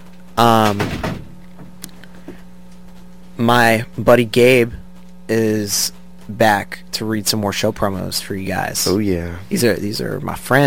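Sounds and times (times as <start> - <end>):
speech: 0.4 - 1.1, 3.4 - 10.6
door closing with a solid thud: 0.6 - 1.4.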